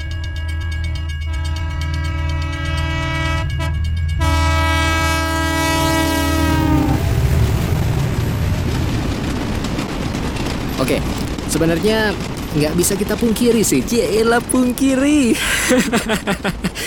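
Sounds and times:
train horn blaring: 0:00.0 - 0:07.2
heavy rumble of a train rolling past: 0:00.0 - 0:16.8
speech: 0:10.9 - 0:16.8
laughter: 0:15.3 - 0:16.8.

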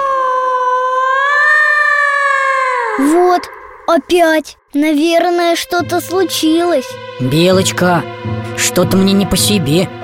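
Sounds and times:
eerie wailing scream: 0:00.0 - 0:03.9
speech: 0:03.0 - 0:10.0.

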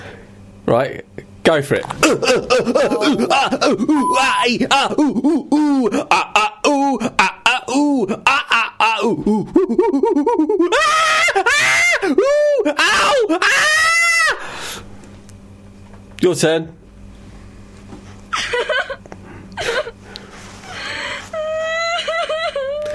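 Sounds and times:
speech: 0:00.7 - 0:14.8, 0:16.2 - 0:16.8
laughter: 0:01.9 - 0:14.0, 0:18.3 - 0:20.0, 0:20.8 - 0:22.9
voice imitating orgy moaning and groaning: 0:02.0 - 0:13.8.

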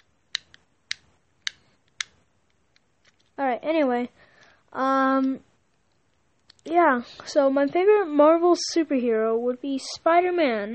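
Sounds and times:
plastic fidget cube clicks: 0:00.0 - 0:03.3
speech: 0:03.5 - 0:05.5, 0:06.7 - 0:10.7.

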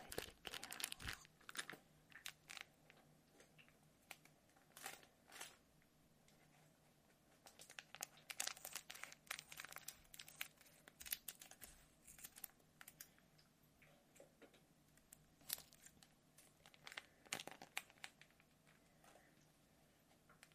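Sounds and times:
plastic wrapper crinkling: 0:00.0 - 0:03.0, 0:04.1 - 0:05.6, 0:07.4 - 0:13.1, 0:15.0 - 0:18.8.

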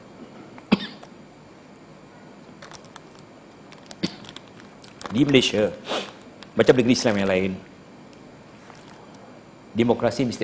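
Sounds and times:
sharp coughs with trailing rasp: 0:00.7 - 0:01.0
speech: 0:05.1 - 0:06.0, 0:06.6 - 0:07.7, 0:09.8 - 0:10.4.

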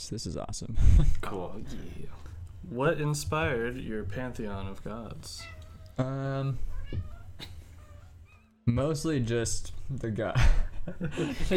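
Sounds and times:
speech: 0:00.0 - 0:07.6, 0:08.7 - 0:11.5
quiet murmuring: 0:03.4 - 0:07.8
cat meowing: 0:05.2 - 0:08.6
laughter: 0:10.4 - 0:11.5.

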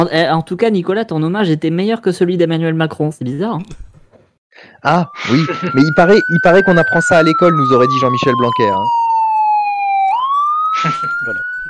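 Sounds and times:
speech: 0:00.0 - 0:03.9, 0:04.6 - 0:09.0, 0:10.8 - 0:11.5
ambulance siren wailing: 0:04.8 - 0:11.6
laughter: 0:05.1 - 0:06.0, 0:10.8 - 0:11.4.

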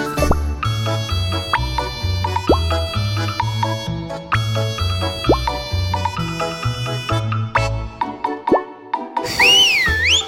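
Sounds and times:
bouncy instrumental music: 0:00.0 - 0:10.2
water-filled clay whistle warbling from Kaluga Russia: 0:09.3 - 0:10.2.

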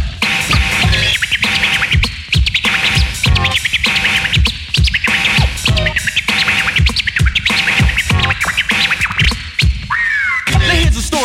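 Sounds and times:
DJ turntable scratching with a chirpy bird-like quality: 0:00.0 - 0:11.2
thumping beat: 0:00.0 - 0:11.2.

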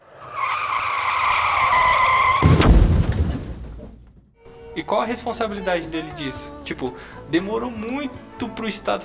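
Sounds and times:
high-pitched car tire screech: 0:00.0 - 0:02.7
heavy crash with rumbling, clattering aftermath: 0:01.6 - 0:04.3
speech: 0:04.8 - 0:09.0.

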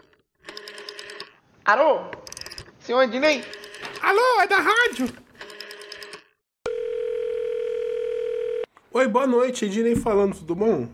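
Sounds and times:
telephone dial tone while phoning a bakery: 0:00.0 - 0:01.4, 0:03.4 - 0:04.0, 0:05.4 - 0:08.7
speech: 0:01.7 - 0:02.2, 0:02.9 - 0:05.2, 0:09.0 - 0:10.9.

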